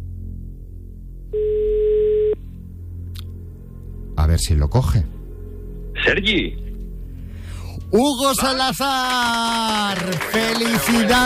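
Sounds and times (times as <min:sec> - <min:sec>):
telephone dial tone: 0:01.4 - 0:02.4
speech: 0:04.4 - 0:05.2, 0:06.1 - 0:06.6, 0:07.9 - 0:11.2.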